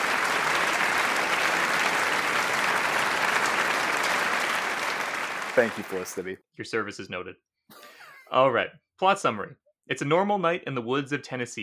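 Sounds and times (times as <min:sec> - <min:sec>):
large crowd applause: 0:00.0 - 0:06.3
speech: 0:05.6 - 0:07.5, 0:08.3 - 0:11.6.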